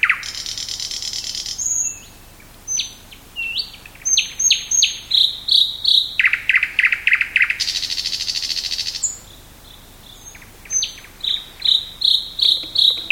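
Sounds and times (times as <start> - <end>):
thrush nightingale singing a varied song: 0.0 - 13.1.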